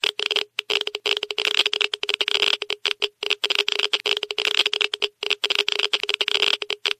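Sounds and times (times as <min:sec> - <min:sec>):
Geiger counter clicking at a medium rate: 0:00.0 - 0:06.9.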